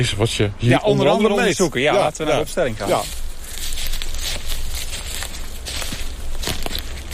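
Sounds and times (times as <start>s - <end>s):
speech: 0.0s - 3.2s
constant outdoor hiss: 0.0s - 7.1s
footsteps on dry leaf litter in a beech forest: 2.0s - 7.1s.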